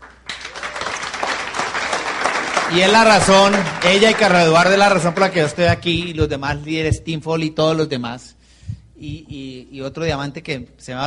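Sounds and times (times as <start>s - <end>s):
crowd applauding: 0.0s - 6.1s
speech: 2.7s - 8.4s, 9.0s - 11.0s.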